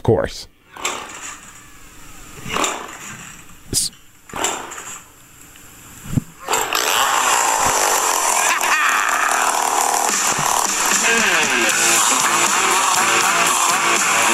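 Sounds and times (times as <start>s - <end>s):
speech: 0.1s - 0.5s
chainsaw revving: 0.7s - 1.6s, 2.4s - 3.5s, 4.3s - 5.1s, 6.4s - 14.3s
rhythmic song backing: 9.0s - 14.3s.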